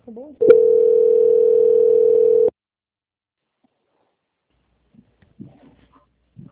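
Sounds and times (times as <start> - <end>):
telephone line tone during call transfer: 0.4 - 2.5.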